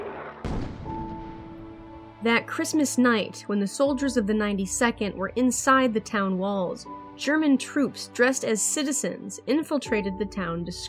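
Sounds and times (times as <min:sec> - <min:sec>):
heavy artillery boom: 0:00.0 - 0:02.0
speech: 0:02.2 - 0:10.8.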